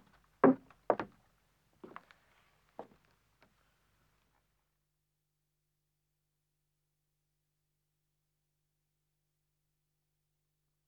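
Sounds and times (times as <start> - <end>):
two women's footsteps ascending wooden stairs: 0.5 - 1.1.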